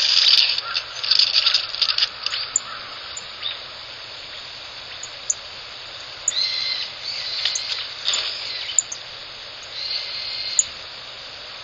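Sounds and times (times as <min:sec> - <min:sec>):
background hiss: 0:00.0 - 0:11.6
Rustic bunting calls at early morning roost: 0:00.2 - 0:03.6, 0:06.0 - 0:09.0, 0:09.6 - 0:10.7.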